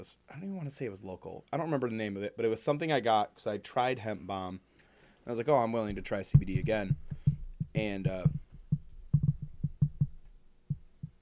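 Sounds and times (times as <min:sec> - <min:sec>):
speech: 0:00.0 - 0:04.7, 0:05.3 - 0:07.1, 0:07.7 - 0:08.4
dog stepping on microphone cord thumping: 0:05.8 - 0:11.1.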